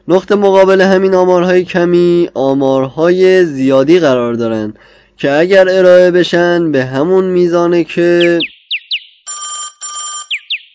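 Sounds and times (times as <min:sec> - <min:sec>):
speech: 0:00.1 - 0:08.6
mobile phone electronic ringtone: 0:09.2 - 0:10.7.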